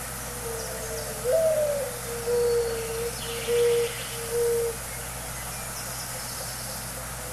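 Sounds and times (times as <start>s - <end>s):
mourning dove cooing: 0.0s - 4.9s.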